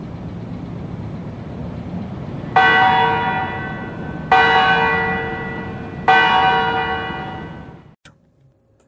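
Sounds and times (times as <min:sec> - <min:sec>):
low outdoor rumble: 0:00.0 - 0:08.8
large Parliament tower bells tolling: 0:02.3 - 0:08.0.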